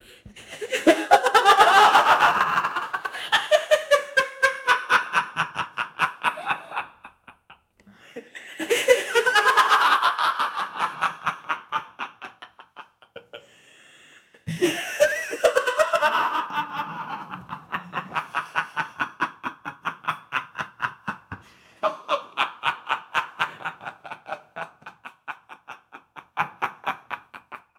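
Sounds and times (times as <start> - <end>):
maniacal laughter in an insane asylum: 0.4 - 7.6, 8.2 - 13.4, 14.5 - 27.7.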